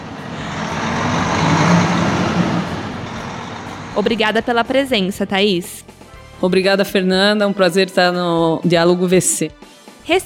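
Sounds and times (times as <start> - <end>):
heavy off-road mining haul truck engine droning: 0.0 - 6.3
speech: 4.0 - 10.2.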